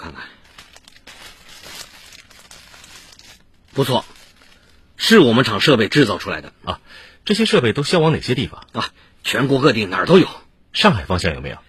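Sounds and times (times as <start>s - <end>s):
speech: 0.0s - 0.4s, 3.8s - 4.1s, 5.0s - 11.6s
large black plastic bag crinkling and rustling while handled: 0.0s - 5.1s.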